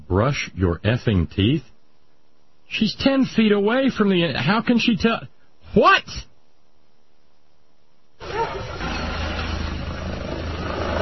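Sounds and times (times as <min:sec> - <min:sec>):
speech: 0:00.1 - 0:01.7, 0:02.7 - 0:06.3
helicopter flying overhead: 0:08.2 - 0:10.9.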